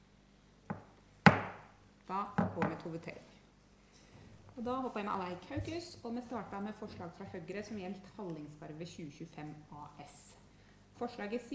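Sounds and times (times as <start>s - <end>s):
knocks on a table calling a vote in a council meeting: 0.7s - 1.6s
speech: 2.1s - 3.4s, 4.6s - 10.4s, 11.0s - 11.5s.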